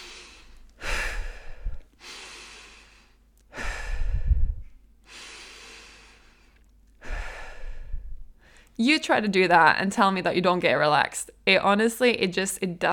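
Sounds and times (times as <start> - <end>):
slow deep breaths as a relaxation exercise before eating: 0.0 - 8.8
speech: 8.8 - 12.9.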